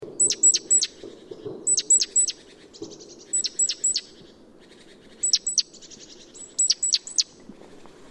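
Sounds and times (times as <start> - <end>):
great tit Parus major sharp very high downward calls: 0.2 - 1.0, 1.6 - 2.4, 3.2 - 4.2, 5.1 - 7.3.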